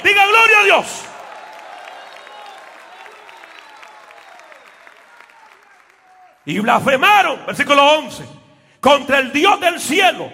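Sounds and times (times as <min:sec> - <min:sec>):
large congregation applauding: 0:00.0 - 0:06.7
speech: 0:00.6 - 0:01.1, 0:06.4 - 0:10.3.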